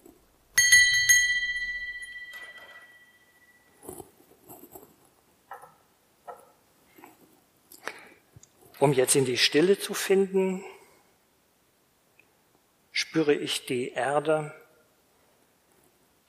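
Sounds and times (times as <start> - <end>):
meditation bell being struck: 0.6 - 3.7
soft rustling and small handling noises: 2.7 - 5.5, 6.3 - 9.0
speech: 8.8 - 10.7, 13.2 - 14.6.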